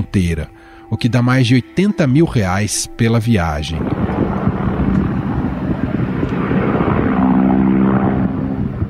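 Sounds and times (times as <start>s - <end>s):
speech: 0.0s - 4.1s
low-flying helicopter flying overhead: 3.4s - 8.8s
gusts of wind buffeting the microphone: 3.7s - 8.8s.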